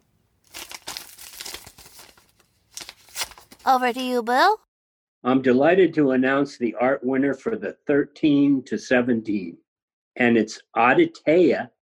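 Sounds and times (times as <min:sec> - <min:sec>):
paper envelope being torn open at an awards announcement: 0:00.5 - 0:03.6
speech: 0:03.7 - 0:04.6, 0:05.2 - 0:09.6, 0:10.2 - 0:11.8.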